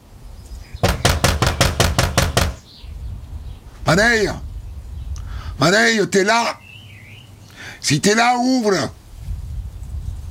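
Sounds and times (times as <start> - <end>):
knocking on the door of a house: 0.8 - 2.6
speech: 3.9 - 4.5, 5.6 - 6.6, 7.8 - 9.0.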